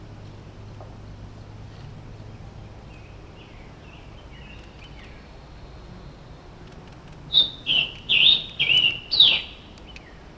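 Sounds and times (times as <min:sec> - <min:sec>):
Scarlet tanager singing in Maryland, United States: 0:01.4 - 0:10.3.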